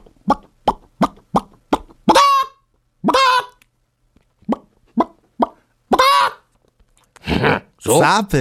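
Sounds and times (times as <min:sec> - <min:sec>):
voice imitating a chicken clucking and squawking: 0:00.0 - 0:03.6, 0:04.5 - 0:06.5
speech: 0:07.9 - 0:08.3.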